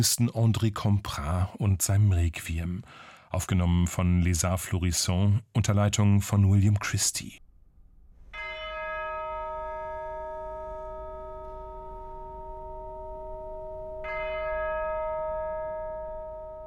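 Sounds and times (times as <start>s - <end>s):
speech: 0.0s - 7.4s
deep church bell tolling: 8.2s - 16.6s.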